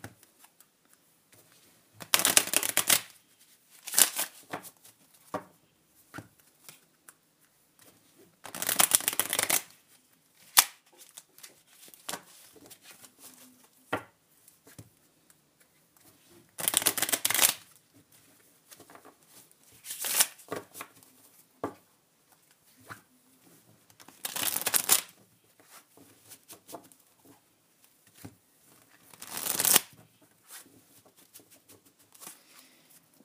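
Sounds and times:
deck of cards riffling during shuffling: 2.0s - 3.1s, 3.8s - 4.4s, 8.5s - 9.7s, 16.6s - 17.6s, 19.9s - 20.4s, 24.1s - 25.1s, 29.1s - 29.9s.

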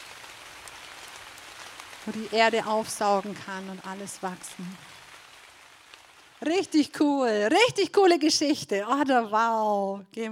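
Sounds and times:
slightly brighter rain drips: 0.0s - 7.7s
soft steady rain pattering on a surface: 0.0s - 10.3s
speech: 2.0s - 5.0s, 6.4s - 10.3s.

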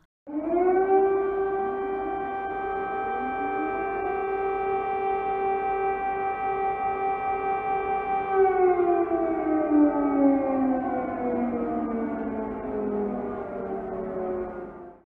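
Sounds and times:
air defence siren wailing in Kyiv and Lviv Ukraine: 0.3s - 15.0s.

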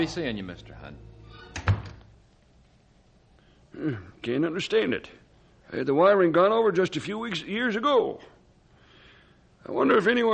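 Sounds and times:
speech: 0.0s - 1.1s, 3.8s - 8.3s, 9.6s - 10.3s
house door swinging shut: 1.5s - 2.1s.

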